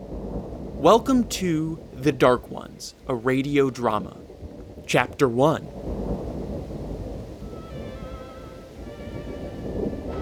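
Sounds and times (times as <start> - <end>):
deep thunder rumbling: 0.0 - 10.2
speech: 0.8 - 4.2, 4.9 - 5.8
faint whistling tones: 7.4 - 10.2.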